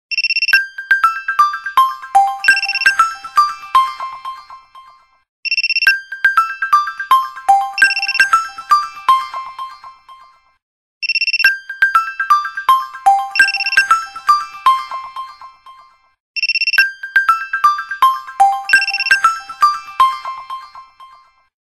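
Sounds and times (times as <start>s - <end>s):
Nokia Lumia 1520 phone alarm: 0.1s - 4.2s, 5.5s - 9.3s, 11.0s - 15.0s, 16.4s - 20.5s.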